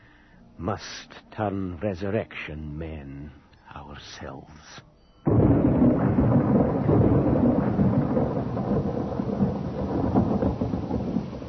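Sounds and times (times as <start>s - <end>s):
speech: 0.6s - 5.8s
deep continuous rumble of thunder: 5.3s - 11.4s
dense rain hissing in a heavy storm: 5.3s - 11.4s.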